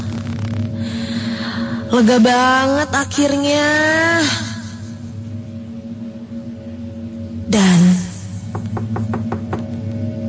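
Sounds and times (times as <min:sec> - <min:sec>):
steady low hum: 0:00.0 - 0:10.2
speech: 0:01.9 - 0:04.4, 0:07.5 - 0:07.9
knocking on a toilet door: 0:08.4 - 0:09.8.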